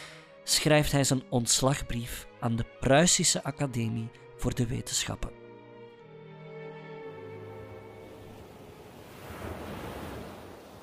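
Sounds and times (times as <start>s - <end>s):
speech: 0.6s - 5.4s
sea waves rushing heard from a ship's promenade deck: 7.4s - 10.8s
wind buffeting the open air: 7.9s - 10.8s.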